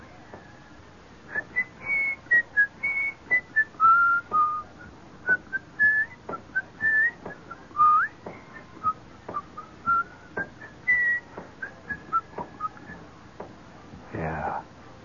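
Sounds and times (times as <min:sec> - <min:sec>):
marching band members whistling a marching tune in unison: 0:01.3 - 0:13.1.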